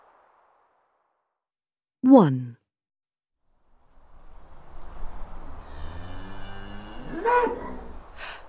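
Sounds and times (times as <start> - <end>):
speech: 2.1 - 2.6
cow mooing on a farm at night: 5.6 - 8.0.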